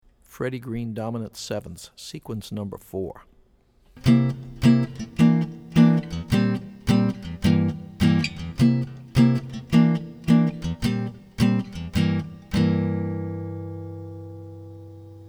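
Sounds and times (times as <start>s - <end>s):
jazz guitar chording in D minor sevenths: 4.0s - 15.2s.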